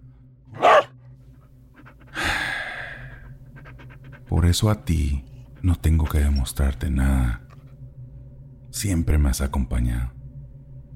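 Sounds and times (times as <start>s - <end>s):
dog panting: 0.6s - 0.9s, 1.7s - 2.5s, 3.2s - 6.5s
speech: 4.4s - 7.4s, 8.7s - 10.2s.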